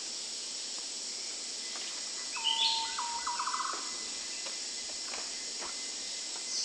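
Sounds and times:
constant high insect drone: 0:00.0 - 0:06.6
green broadbill call: 0:02.4 - 0:03.8.

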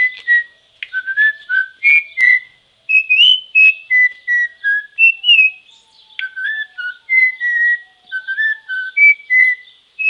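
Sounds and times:
Venezuelan troupial song: 0:00.0 - 0:10.0.

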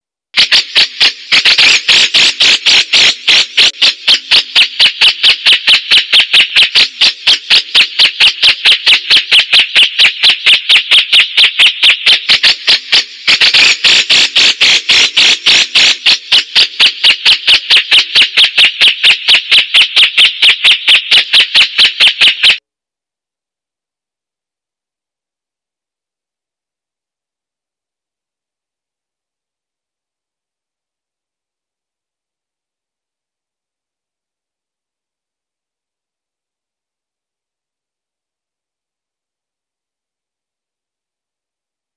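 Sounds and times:
cucakjenggot bulbul: 0:00.4 - 0:22.6.

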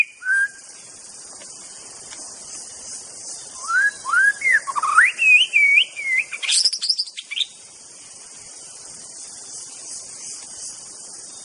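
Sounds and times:
White-rumped Shama singing in forest: 0:00.0 - 0:00.7, 0:03.6 - 0:07.5
steady hiss: 0:00.0 - 0:11.4.

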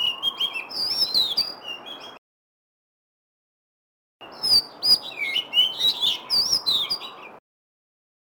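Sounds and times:
black Cebu form magpie-robin singing: 0:00.0 - 0:02.2, 0:04.2 - 0:07.4.

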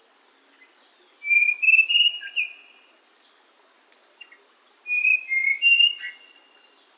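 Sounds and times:
constant shrill insect hum: 0:00.0 - 0:06.9
Tanahjampea blue flycatcher singing: 0:00.6 - 0:02.9, 0:04.2 - 0:06.8.

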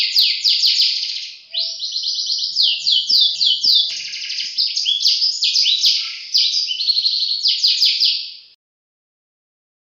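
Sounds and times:
Atlantic competition canary trilling song: 0:00.0 - 0:08.6.

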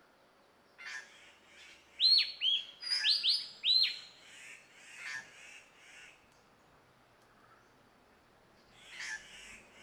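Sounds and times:
Cissa thalassina bird calling: 0:00.8 - 0:06.2, 0:08.7 - 0:09.8.

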